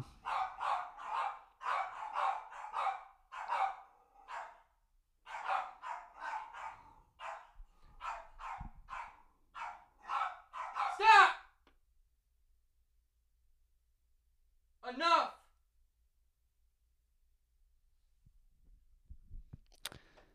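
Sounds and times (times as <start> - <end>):
dogs barking while squabbling for attention: 0.0 - 11.1.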